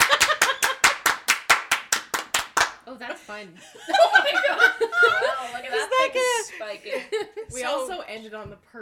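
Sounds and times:
group clapping in unison: 0.0s - 2.8s
speech: 3.1s - 8.8s
laughter: 3.6s - 7.6s.

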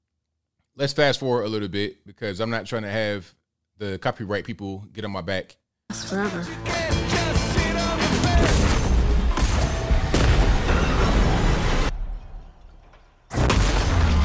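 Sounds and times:
speech: 0.8s - 7.3s
loud rumbling explosion from a film trailer about a train derailment: 8.3s - 12.4s, 13.3s - 14.2s.

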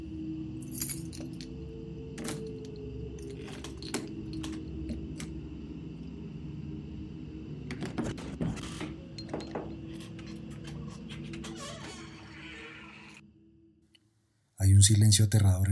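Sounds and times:
keys jangling while hands search a trouser pocket: 0.6s - 5.3s, 9.1s - 11.3s
speech: 14.8s - 15.6s.

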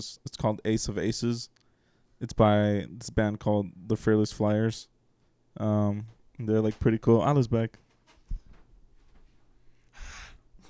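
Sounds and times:
speech: 0.0s - 1.6s, 2.2s - 4.9s, 5.6s - 7.8s
person breathing into a microphone: 1.6s - 2.2s, 9.7s - 10.5s.

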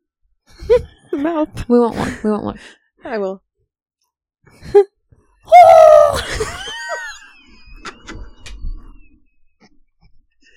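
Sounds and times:
speech: 1.2s - 3.4s
voice imitating a high-pitched locomotive whistle: 5.5s - 6.2s
breathy sounds: 5.5s - 6.3s.

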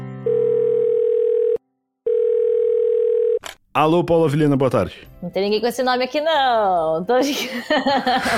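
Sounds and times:
telephone tones while placing a call: 0.3s - 3.4s
speech: 3.7s - 8.3s
laughter: 7.2s - 8.3s.

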